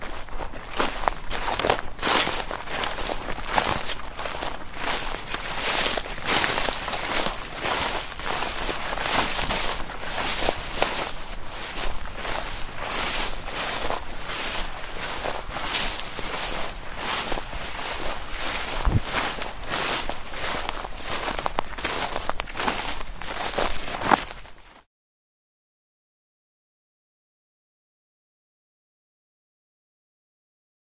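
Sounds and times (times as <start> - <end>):
footsteps on wood: 0.0 - 24.7.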